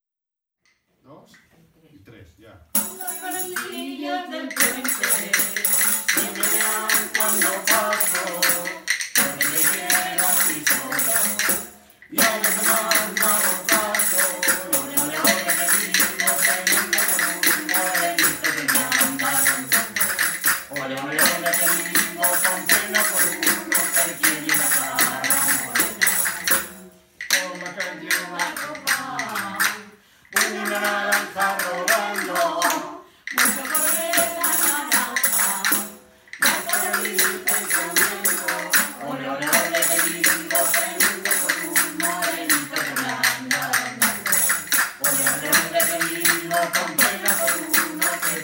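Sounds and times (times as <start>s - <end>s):
folk tune: 2.8s - 48.4s.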